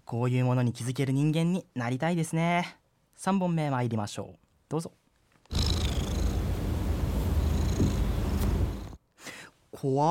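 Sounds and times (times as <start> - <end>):
speech: 0.1 - 5.6, 9.8 - 10.0
cat purring: 5.5 - 9.0.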